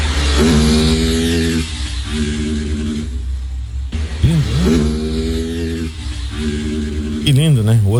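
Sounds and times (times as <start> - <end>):
motorcycle engines revving while racing on a street: 0.0 - 7.9
road noise: 0.0 - 7.9
speech: 0.4 - 0.9, 7.3 - 7.9.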